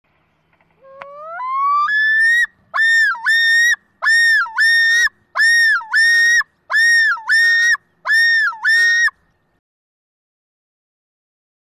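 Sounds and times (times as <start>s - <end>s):
loon yodel: 0.8s - 9.1s.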